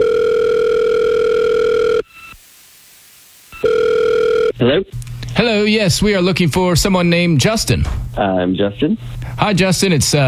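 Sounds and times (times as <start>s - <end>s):
outgoing call telephone ringback tone: 0.0s - 2.4s, 3.5s - 4.6s
speech: 4.6s - 10.2s.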